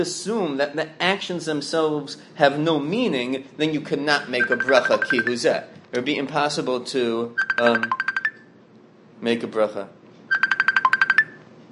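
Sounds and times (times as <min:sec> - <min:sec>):
speech: 0:00.0 - 0:08.0, 0:09.2 - 0:10.0
phone ringtone electronic beeps: 0:04.3 - 0:05.5, 0:07.4 - 0:08.5, 0:10.3 - 0:11.5.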